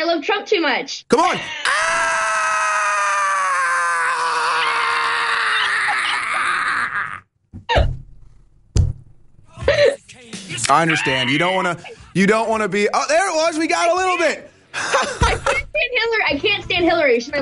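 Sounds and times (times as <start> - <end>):
speech: 0.2 - 2.2, 10.7 - 17.4
person screaming in a long sustained cry: 1.6 - 7.3.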